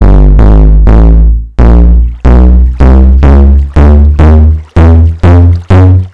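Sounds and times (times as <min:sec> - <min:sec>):
bass boosted note block: 0:00.0 - 0:06.1.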